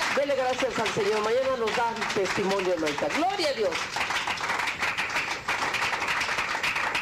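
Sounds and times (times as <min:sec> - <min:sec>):
crowd applauding in a room: 0:00.0 - 0:06.9
speech: 0:00.2 - 0:04.1.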